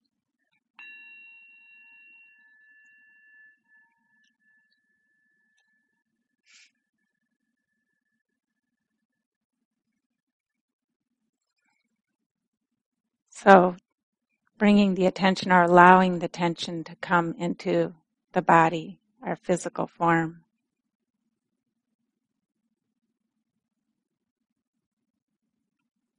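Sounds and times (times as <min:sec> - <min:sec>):
small bell struck to start a mindfulness practice: 0:00.8 - 0:05.5
speech: 0:13.4 - 0:13.8, 0:14.6 - 0:20.4.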